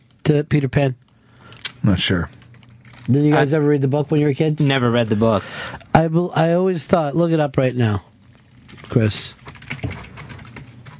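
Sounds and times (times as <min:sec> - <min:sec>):
speech: 0:00.3 - 0:01.0, 0:01.8 - 0:02.4, 0:03.1 - 0:08.1, 0:08.7 - 0:09.4
fast typing on a computer keyboard: 0:08.7 - 0:10.9.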